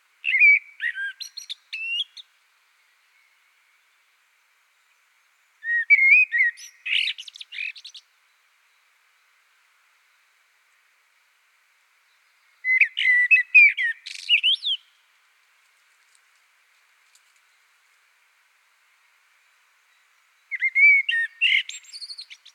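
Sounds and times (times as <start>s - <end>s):
blackbird singing: 0.2s - 2.3s, 5.6s - 8.1s, 12.1s - 15.0s, 19.9s - 22.5s.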